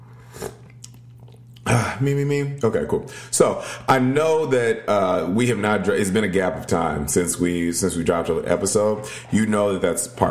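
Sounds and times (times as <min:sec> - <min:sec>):
low electrical hum: 0:00.0 - 0:10.3
person slurping tea from a cup: 0:00.1 - 0:00.9
speech: 0:01.7 - 0:10.3.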